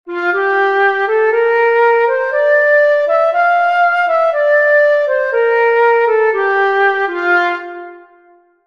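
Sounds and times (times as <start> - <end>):
F major scale: 0.1 - 8.6.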